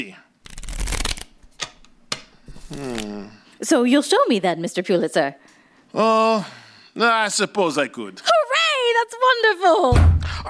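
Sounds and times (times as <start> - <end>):
speech: 0.0 - 0.2, 2.7 - 8.3, 8.9 - 10.4
deck of playing cards riffle shuffled: 0.4 - 1.8, 2.5 - 3.2.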